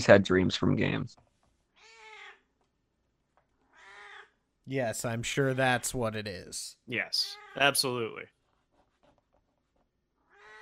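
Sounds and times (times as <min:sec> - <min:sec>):
speech: 0:00.0 - 0:01.2, 0:04.7 - 0:08.4
female cat meowing: 0:01.8 - 0:02.5, 0:03.7 - 0:04.3, 0:10.2 - 0:10.5.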